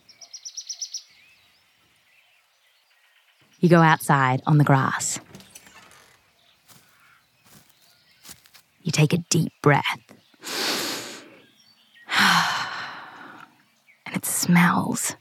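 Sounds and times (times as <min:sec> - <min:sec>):
birds tweeting after a rainstorm: 0:00.0 - 0:12.1
speech: 0:03.6 - 0:05.2, 0:09.0 - 0:10.0, 0:14.5 - 0:15.2.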